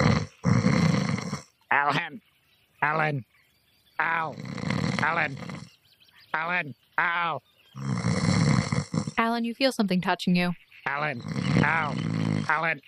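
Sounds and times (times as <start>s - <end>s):
person imitating loud snoring: 0.0s - 1.5s, 4.0s - 5.7s, 7.8s - 9.2s, 11.1s - 12.6s
speech: 1.9s - 3.3s, 4.0s - 5.6s, 6.3s - 7.9s, 9.2s - 12.8s.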